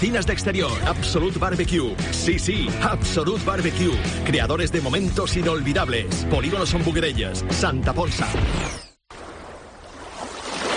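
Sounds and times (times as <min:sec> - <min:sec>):
speech: 0:00.0 - 0:08.8
sea waves washing in: 0:09.1 - 0:10.7.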